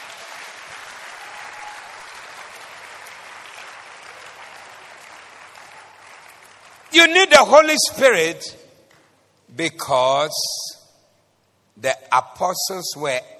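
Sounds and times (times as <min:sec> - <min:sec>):
audience applause: 0:00.0 - 0:06.9
speech: 0:06.9 - 0:08.6, 0:09.6 - 0:10.7, 0:11.8 - 0:13.3.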